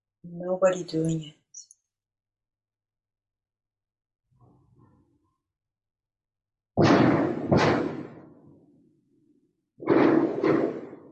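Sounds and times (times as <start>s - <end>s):
speech: 0.2s - 1.4s
fireworks explosions in Oxford: 6.8s - 8.6s, 9.8s - 11.0s.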